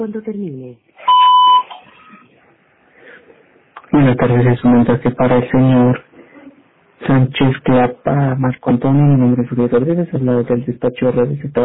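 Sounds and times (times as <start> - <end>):
speech: 0.0 - 1.0, 3.9 - 6.1, 7.0 - 11.6
faint low noise: 0.0 - 11.6
electronic voicemail beep tone: 1.0 - 1.9.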